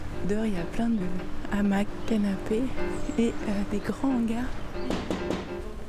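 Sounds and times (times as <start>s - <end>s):
speech: 0.2s - 5.1s
knocking on the door of a large 1960s-style house: 4.7s - 5.7s.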